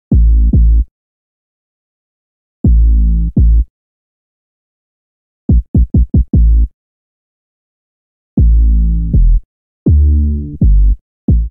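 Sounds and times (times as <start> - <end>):
bassline in A minor: 0.1 - 0.9, 2.7 - 3.7, 5.5 - 6.7, 8.4 - 11.4.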